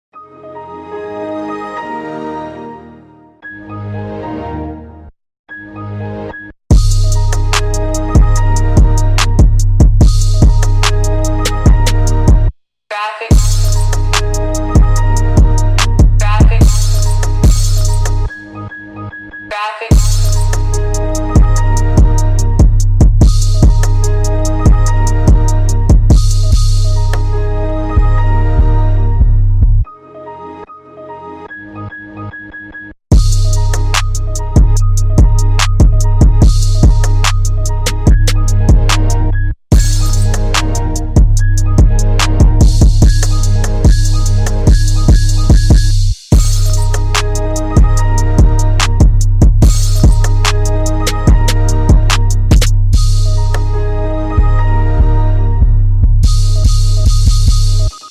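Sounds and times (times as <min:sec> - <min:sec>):
trap remix music: 0:06.7 - 0:12.5, 0:13.2 - 0:18.6, 0:19.5 - 0:28.9, 0:33.1 - 0:58.0.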